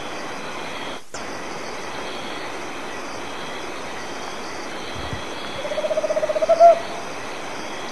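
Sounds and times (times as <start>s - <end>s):
quiet hiss: 0.0s - 7.9s
Tropical Screech-Owl trill in Argentina: 5.6s - 7.0s.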